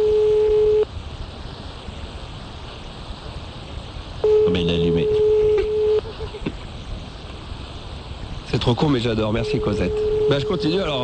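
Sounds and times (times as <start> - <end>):
electronic ringback tone of a call to a landline: 0.0 - 0.9, 4.2 - 6.1, 9.4 - 11.0
faint hiss on a phone line: 0.0 - 11.0
speech: 8.6 - 11.0.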